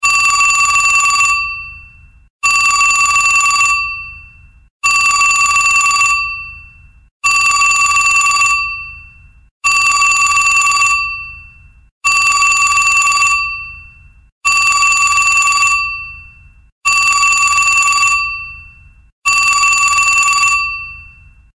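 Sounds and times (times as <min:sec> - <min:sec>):
vintage telephone ringtone on a phone: 0:00.0 - 0:21.4.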